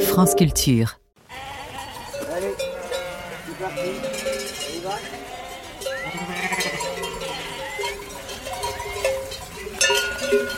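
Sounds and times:
speech: 0.2s - 1.0s
flock of sheep bleating: 1.2s - 9.0s
many cowbells jangling: 1.7s - 10.5s.

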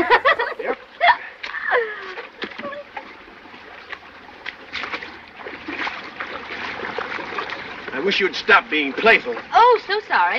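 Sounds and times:
laughter: 0.0s - 2.8s
water splashing as someone wades across a river carrying a person piggyback: 0.0s - 10.3s
speech: 8.1s - 10.3s.

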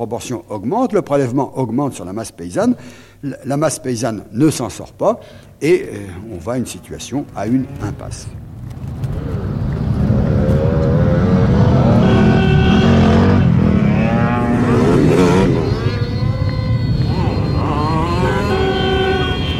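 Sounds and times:
speech: 0.0s - 8.4s
car engine revving: 7.0s - 19.5s.

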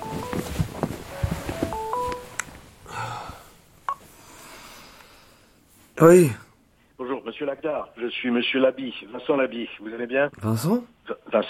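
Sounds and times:
phone ringtone of bright electronic stepped beeping notes: 0.0s - 2.4s
speech: 6.0s - 6.4s, 7.4s - 11.4s.

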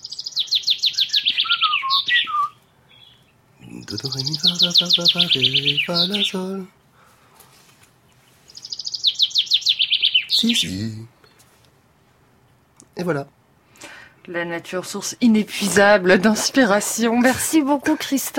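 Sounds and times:
nightingale singing trilled phrases: 0.0s - 7.0s, 8.0s - 11.4s
speech: 3.9s - 6.8s, 10.4s - 11.2s, 13.0s - 13.4s, 14.3s - 18.3s.

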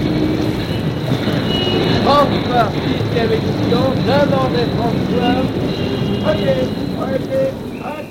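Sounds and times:
noisy street bustle: 0.0s - 8.0s
newspaper vendors shouting in the streets selling the latest edition: 1.7s - 8.0s.

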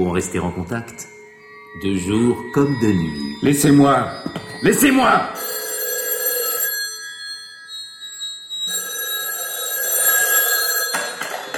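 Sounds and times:
speech: 0.0s - 5.4s
telephone bell ringing: 3.4s - 11.5s.

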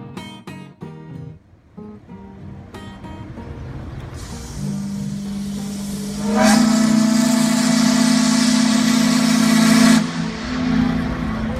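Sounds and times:
low engine-like drone: 1.4s - 11.5s
hiss of steam from a steamboat whistle: 2.8s - 11.5s
steamboat whistle long deep blast: 4.2s - 11.5s.

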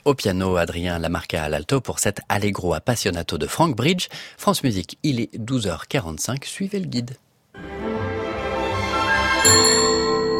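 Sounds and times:
speech: 0.0s - 8.1s, 9.4s - 10.0s
bell ringing with a bright metallic strike: 9.4s - 10.3s.

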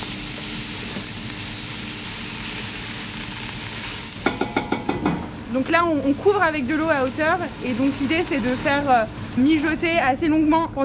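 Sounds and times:
asparagus and carrots sautéing in a pan until caramelized: 0.0s - 10.8s
speech: 5.5s - 10.8s.

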